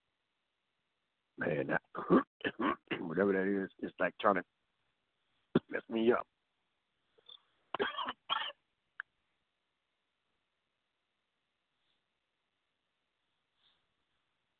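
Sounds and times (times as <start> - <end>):
speech: 1.4 - 2.3, 3.2 - 4.6, 5.7 - 6.3
person clearing throat: 1.4 - 3.1, 5.6 - 5.8, 7.8 - 8.6
person coughing: 2.0 - 3.1, 7.8 - 8.6.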